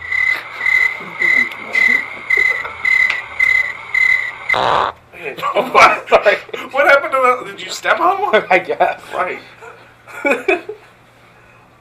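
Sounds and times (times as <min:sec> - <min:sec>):
crickets chirping: 0:00.0 - 0:05.0
brief burst of noise: 0:02.8 - 0:05.0
speech: 0:05.4 - 0:09.6, 0:10.2 - 0:10.7.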